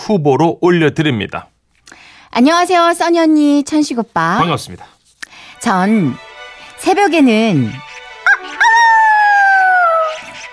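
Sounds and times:
speech: 0:00.1 - 0:01.5, 0:02.4 - 0:04.9, 0:05.6 - 0:07.9
rooster crowing: 0:08.2 - 0:10.3.

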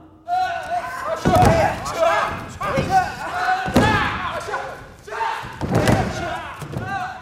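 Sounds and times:
people shouting around judo athletes: 0:00.2 - 0:07.1
judo athletes' bodies thudding on the floor from throws: 0:01.2 - 0:07.1.

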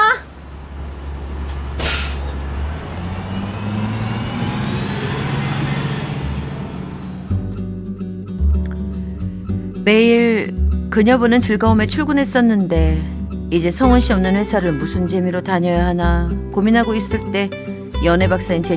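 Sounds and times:
bus engine rumbling as the bus pulls away: 0:00.0 - 0:18.7
bus air brakes hissing: 0:01.4 - 0:02.4
speech: 0:09.9 - 0:10.2, 0:11.0 - 0:18.7.

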